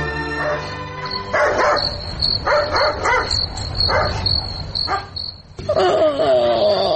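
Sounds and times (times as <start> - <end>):
crickets chirping: 0.1 - 6.8
dog barking at night: 0.3 - 5.2.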